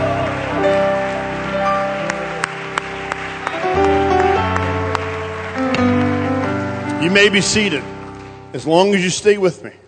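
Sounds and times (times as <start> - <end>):
crowd clapping hands: 0.0 - 8.4
loud sustained organ or keyboard music: 0.0 - 9.8
speech: 7.1 - 9.8.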